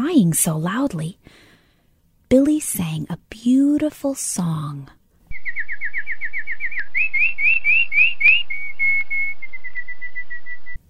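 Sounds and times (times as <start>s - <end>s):
speech: 0.0s - 1.4s, 2.3s - 5.0s
bird singing repeated whistled notes: 5.3s - 10.8s.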